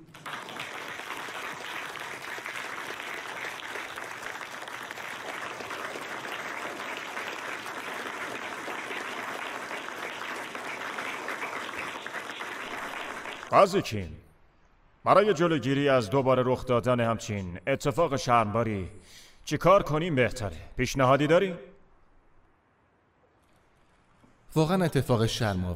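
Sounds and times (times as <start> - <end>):
crowd applauding: 0.0 - 13.6
speech: 13.5 - 14.2, 15.0 - 21.7, 24.5 - 25.7.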